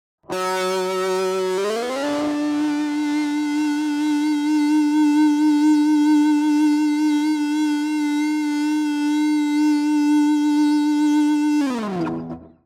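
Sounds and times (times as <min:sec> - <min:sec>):
distorted rock guitar long sustain tone: 0:00.2 - 0:12.6.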